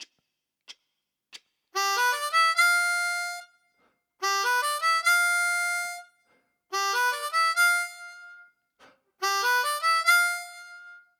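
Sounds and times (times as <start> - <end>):
cross harp harmonica exercise: 1.8 - 3.6, 4.2 - 8.6, 9.2 - 11.1.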